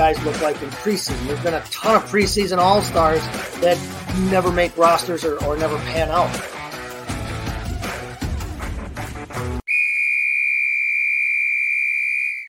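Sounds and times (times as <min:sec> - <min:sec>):
speech: 0:00.0 - 0:06.6
busy burst of music: 0:00.0 - 0:09.6
loud whistle blown: 0:09.7 - 0:12.4.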